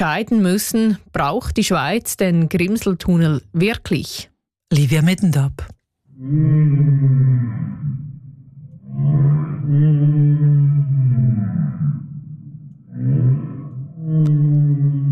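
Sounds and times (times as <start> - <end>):
speech: 0.0 - 7.8, 9.0 - 11.6
long moaning whale calls: 6.1 - 15.1.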